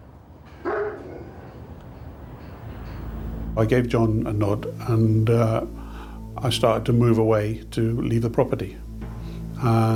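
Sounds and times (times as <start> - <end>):
dog barking: 0.6 - 1.4
speech: 3.6 - 5.8, 6.4 - 8.8, 9.6 - 9.9.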